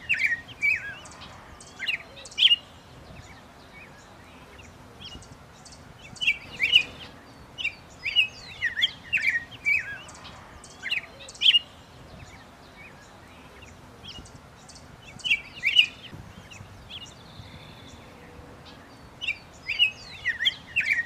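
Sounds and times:
background hiss: 0:00.0 - 0:21.0
small bird singing with high quick twittering chirps: 0:00.0 - 0:21.0.

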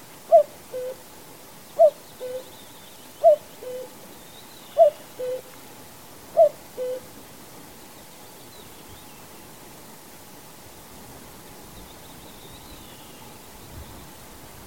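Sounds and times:
steady hiss: 0:00.0 - 0:14.6
common cuckoo calling: 0:00.3 - 0:01.0, 0:01.8 - 0:04.0, 0:04.7 - 0:05.5, 0:06.4 - 0:07.1.

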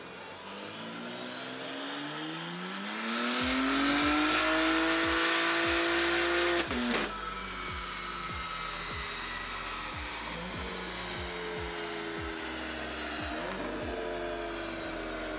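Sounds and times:
BMW M3 engine with SSR race exhaust, E85 tune and port injection roaring on dyno: 0:00.0 - 0:15.3
low rhythmic thumps: 0:03.4 - 0:14.6.

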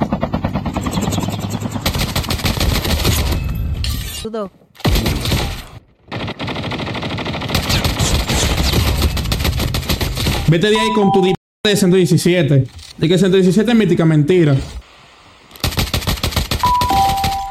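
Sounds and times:
rapid automatic gunfire from a weapon in a video game: 0:00.0 - 0:03.3, 0:04.9 - 0:10.5, 0:15.6 - 0:17.4
speech: 0:04.3 - 0:05.2, 0:10.5 - 0:14.8.

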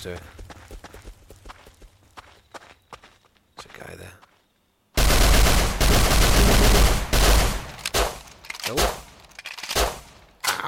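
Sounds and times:
speech: 0:00.0 - 0:00.4, 0:03.8 - 0:04.2, 0:08.7 - 0:09.0
pistol gunfire in a video game: 0:05.0 - 0:08.2.

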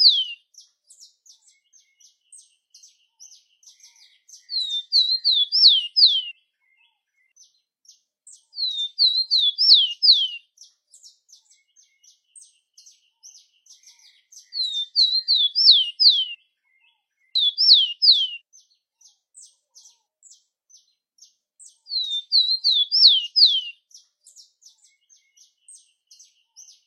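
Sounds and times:
Rufous-collared sparrow Zonotrichia capensis singing: 0:00.0 - 0:06.4, 0:08.3 - 0:16.4, 0:17.3 - 0:18.7, 0:21.6 - 0:26.8.

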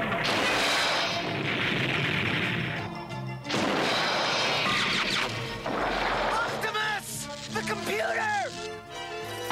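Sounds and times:
heat-seeking missile hitting and exploding: 0:00.0 - 0:02.9, 0:03.5 - 0:06.5
voices speaking: 0:06.3 - 0:08.7.

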